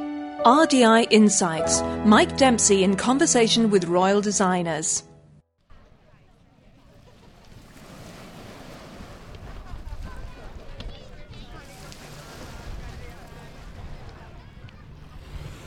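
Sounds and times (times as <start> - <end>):
speech: 0.4 - 5.1
surf washing at Broadstairs in Kent: 5.8 - 15.6
gusts of wind buffeting the microphone: 6.9 - 15.6
murmur of voices and activity at the seaside: 9.4 - 15.6.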